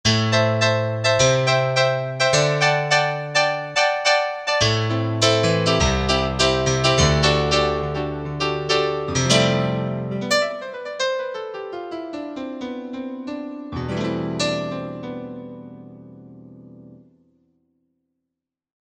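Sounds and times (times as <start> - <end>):
velocity piano on Korg MSC-1S: 0.0 - 17.2.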